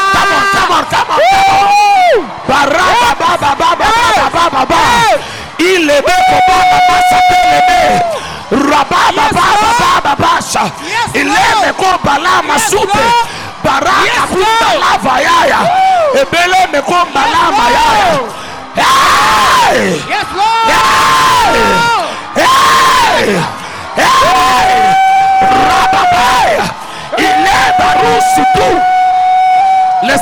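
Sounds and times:
large crowd screaming, shouting and cheering while jumping: 0.0 - 30.2.

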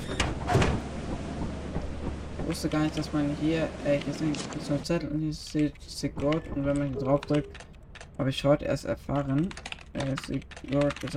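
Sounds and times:
door sliding open: 0.0 - 1.0
speech: 2.5 - 11.1.

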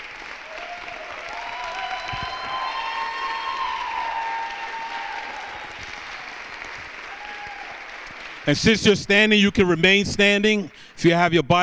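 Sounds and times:
congregation applauding: 0.0 - 9.2
cheers and whistles: 0.4 - 8.0
speech: 8.5 - 11.6.

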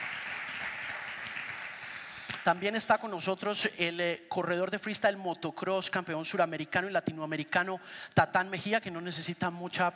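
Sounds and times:
audience applause welcoming a guest: 0.0 - 2.2
speech: 2.4 - 9.9.

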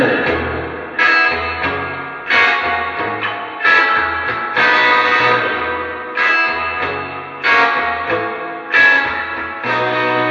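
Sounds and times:
electric guitar strumming chords through an amp with reverb rolled up: 0.0 - 10.2.

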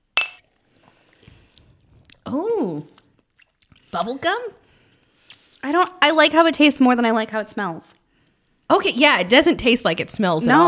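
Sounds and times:
glasses clinking in a toast: 0.2 - 0.5
speech: 2.3 - 3.0, 3.9 - 4.6, 5.6 - 8.0, 8.7 - 10.6.

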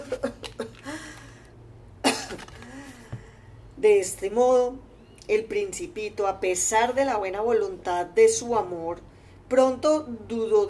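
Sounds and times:
forced cough: 2.0 - 2.6
speech: 3.8 - 10.6.

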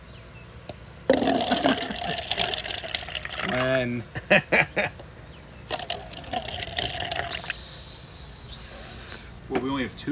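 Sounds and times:
liquid pouring into a glass: 1.1 - 3.8, 5.7 - 7.7
speech: 3.6 - 4.9, 9.8 - 10.1.

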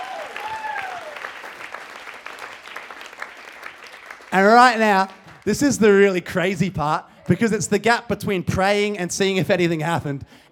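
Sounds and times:
person whooping or cheering: 0.0 - 1.2
crowd applauding: 0.0 - 6.0
speech: 4.3 - 10.4.

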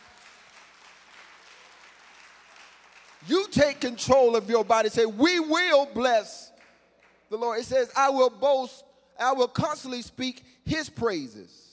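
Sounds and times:
audience applause: 0.0 - 3.3
speech: 3.2 - 6.5, 7.3 - 11.6.

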